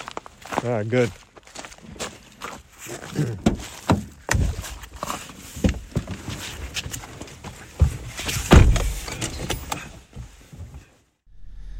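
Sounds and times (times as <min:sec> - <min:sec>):
two people climbing into a car: 0:00.0 - 0:11.1
speech: 0:00.6 - 0:01.2, 0:03.1 - 0:03.6
car door slamming: 0:08.5 - 0:09.1.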